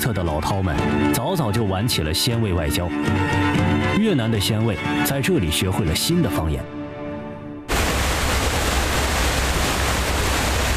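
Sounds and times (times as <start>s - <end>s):
speech: 0.0s - 6.8s
waterfall roaring: 7.7s - 10.7s.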